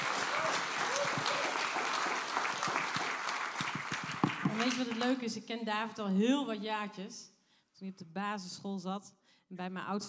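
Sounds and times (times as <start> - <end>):
audience applause: 0.0 - 5.2
sharp hand claps: 0.0 - 5.2
speech: 4.6 - 10.0.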